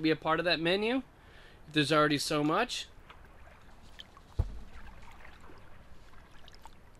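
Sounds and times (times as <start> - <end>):
speech: 0.0 - 1.1, 1.7 - 2.9
small boat moving through water with sloshing and lapping: 2.4 - 6.9
hollow knock against a boat hull: 4.3 - 4.8.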